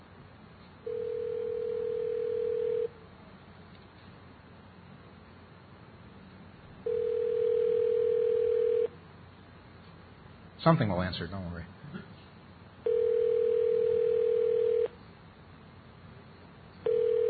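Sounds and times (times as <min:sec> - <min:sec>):
outgoing telephone call ringing tone: 0:00.8 - 0:02.9, 0:06.8 - 0:08.9, 0:12.8 - 0:15.0, 0:16.8 - 0:17.2
speech: 0:10.6 - 0:11.8.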